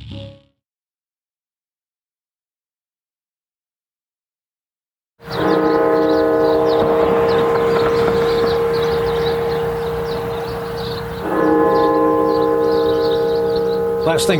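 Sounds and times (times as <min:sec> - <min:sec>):
deep bells of the National Cathedral in Washington tolling for a death toll: 0:05.2 - 0:14.3
faint chirping: 0:05.3 - 0:14.3
speech: 0:14.2 - 0:14.3.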